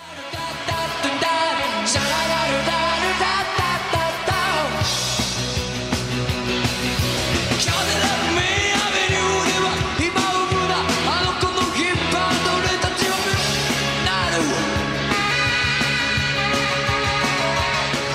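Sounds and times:
loud live rock band playing: 0:00.0 - 0:18.1
steady pounding bass groove: 0:00.0 - 0:18.1
saxophone lines: 0:14.6 - 0:18.1.

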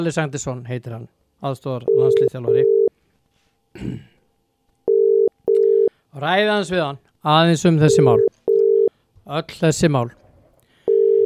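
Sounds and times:
speech: 0:00.0 - 0:02.8, 0:03.8 - 0:04.1, 0:06.1 - 0:08.3, 0:09.3 - 0:10.2
telephone tones while a call is being placed: 0:01.9 - 0:02.9, 0:04.9 - 0:05.9, 0:07.9 - 0:08.9, 0:10.9 - 0:11.2
throat clearing: 0:03.7 - 0:04.3.

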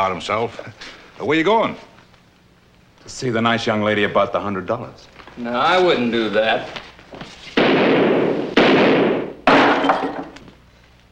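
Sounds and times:
speech: 0:00.0 - 0:01.9, 0:03.0 - 0:07.4
gunshots from a gun in a quick-draw duel: 0:07.6 - 0:09.7.

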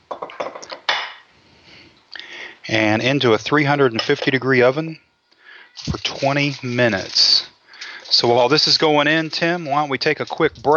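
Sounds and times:
casserole dish light knocks and clinks on a cooking sheet: 0:00.1 - 0:01.2
speech: 0:02.7 - 0:05.1, 0:05.8 - 0:07.4, 0:08.1 - 0:10.7.

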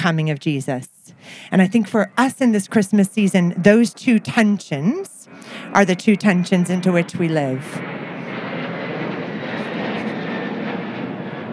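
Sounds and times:
speech: 0:00.0 - 0:07.9
airplane engine roar overhead: 0:00.0 - 0:11.5.

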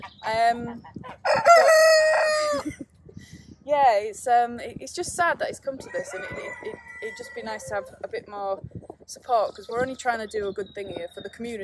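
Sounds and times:
speech: 0:00.0 - 0:01.8, 0:03.7 - 0:11.6
cockerel crowing loudly: 0:01.3 - 0:02.6, 0:05.9 - 0:07.9.

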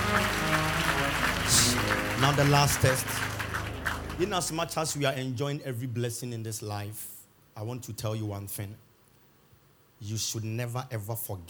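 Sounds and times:
audience clapping hands: 0:00.0 - 0:05.1
steady musical hum: 0:00.0 - 0:06.3
speech: 0:01.7 - 0:03.3, 0:04.2 - 0:08.8, 0:10.0 - 0:11.4.

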